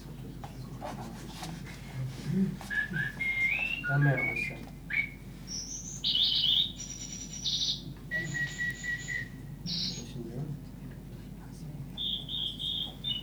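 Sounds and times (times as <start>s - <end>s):
computer-synthesized parakeet-like birdsong: 2.8s - 10.3s, 12.0s - 13.2s
speech: 3.9s - 4.4s.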